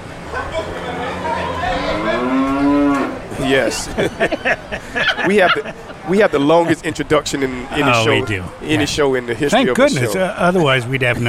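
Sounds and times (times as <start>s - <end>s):
cow mooing: 0.4s - 3.3s
laughter: 3.3s - 8.8s
speech: 3.4s - 11.2s.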